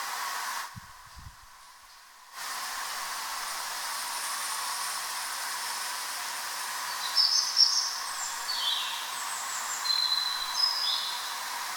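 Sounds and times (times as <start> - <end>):
steady background hiss: 0.0 - 11.7
nocturnal bird singing thin high whistled phrases on a street in Paris: 6.9 - 11.3.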